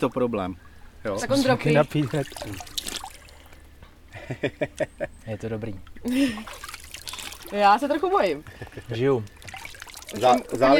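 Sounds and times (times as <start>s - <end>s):
speech: 0.0s - 2.7s, 4.3s - 6.7s, 7.5s - 9.4s, 10.1s - 10.7s
stream water splashing and trickling as a hand scoops it: 0.0s - 3.8s, 5.9s - 10.7s
laughter: 4.1s - 5.2s, 8.4s - 9.1s.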